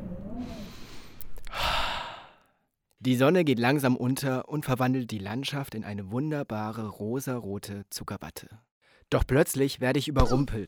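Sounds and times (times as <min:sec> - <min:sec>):
person breathing deeply in and out outdoors in cold wind: 0:00.4 - 0:02.6
speech: 0:03.0 - 0:10.6.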